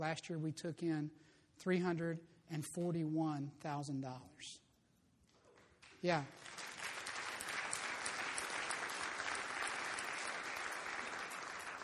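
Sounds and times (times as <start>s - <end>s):
speech: 0.0s - 4.6s, 6.0s - 6.6s
sustained applause from a sizable audience: 6.3s - 11.8s.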